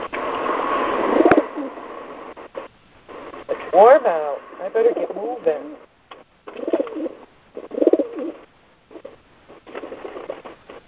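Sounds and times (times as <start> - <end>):
pigeons cooing: 1.1 - 1.8, 6.5 - 9.1
speech: 3.8 - 5.9.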